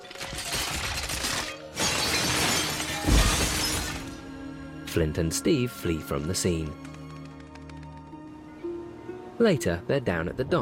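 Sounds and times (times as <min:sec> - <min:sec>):
breaking and clattering debris: 0:00.0 - 0:04.3
bowl shattering and collapsing: 0:00.2 - 0:04.2
speech: 0:05.0 - 0:06.9, 0:09.4 - 0:10.6.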